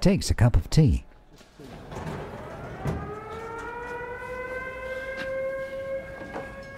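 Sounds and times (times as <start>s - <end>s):
speech: 0.0s - 1.1s
air raid siren wailing: 1.9s - 6.7s.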